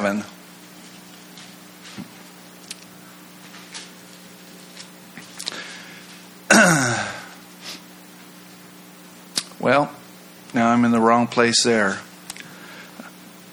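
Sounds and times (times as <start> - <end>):
speech: 0.0 - 0.4, 9.6 - 12.1
loud cough: 6.5 - 7.3.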